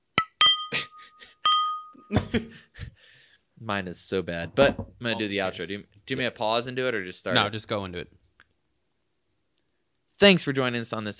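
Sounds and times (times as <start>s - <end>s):
glasses clinking in a toast: 0.1s - 2.2s
speech: 2.1s - 2.6s, 3.6s - 8.2s, 10.2s - 11.1s.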